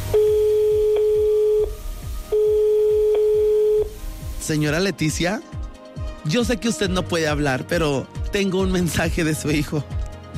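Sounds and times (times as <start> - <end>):
telephone line tone on a call: 0.0 - 4.0
low rhythmic thumping beat: 0.0 - 10.3
speech: 4.5 - 5.6, 6.2 - 10.0.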